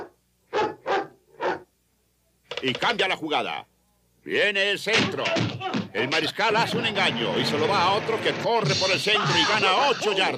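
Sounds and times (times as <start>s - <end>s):
cartoon dog-like barks: 0.0s - 1.7s
speech: 2.6s - 10.3s.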